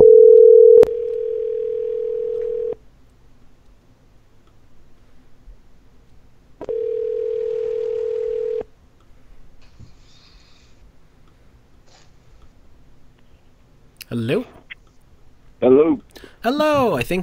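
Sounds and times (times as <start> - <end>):
phone line ringback tone from an outgoing call: 0.0 - 2.8, 6.6 - 8.7
speech: 16.4 - 17.2.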